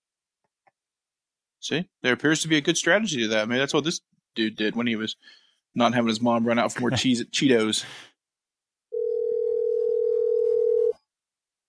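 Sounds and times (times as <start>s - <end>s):
speech: 1.6s - 8.1s
telephone dial tone: 8.9s - 11.0s.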